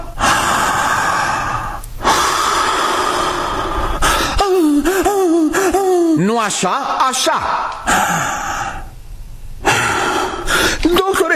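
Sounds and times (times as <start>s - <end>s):
person in labor panting like a dog: 0.0s - 5.9s, 7.8s - 8.9s, 9.6s - 10.8s
speech: 6.2s - 8.4s.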